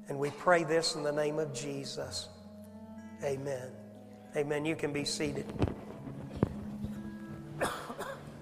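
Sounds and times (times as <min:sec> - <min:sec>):
speech: 0:00.1 - 0:02.4, 0:03.2 - 0:03.8, 0:04.4 - 0:05.8
person coughing: 0:07.6 - 0:08.3.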